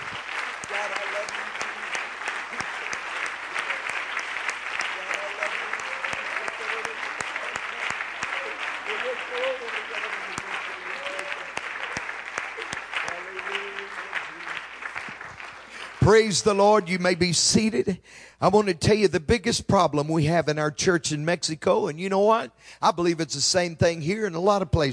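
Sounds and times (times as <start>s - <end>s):
audience clapping hands: 0.0s - 17.9s
speech: 16.1s - 24.9s.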